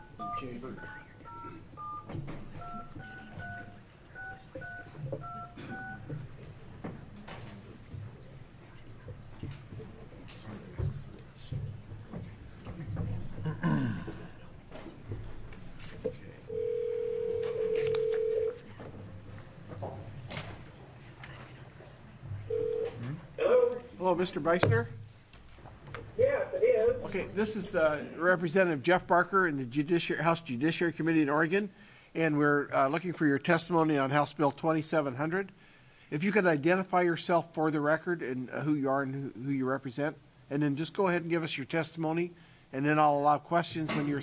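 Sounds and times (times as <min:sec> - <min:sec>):
touch-tone beeps of a phone number being dialed: 0:00.0 - 0:06.1, 0:16.5 - 0:18.5
faint noise: 0:00.0 - 0:44.2
speech: 0:00.4 - 0:02.8, 0:24.2 - 0:25.0, 0:27.2 - 0:44.2
steady telephone ringing tone: 0:16.5 - 0:18.6, 0:22.5 - 0:23.0.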